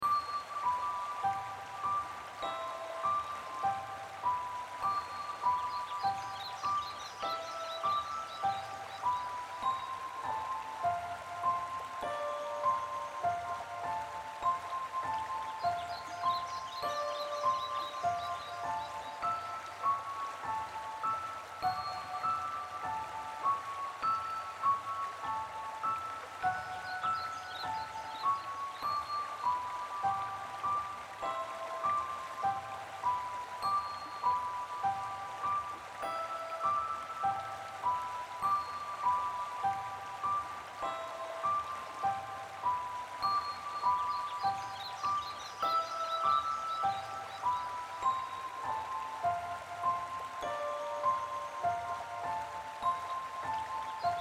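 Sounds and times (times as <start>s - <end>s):
piano: 0.0s - 54.1s.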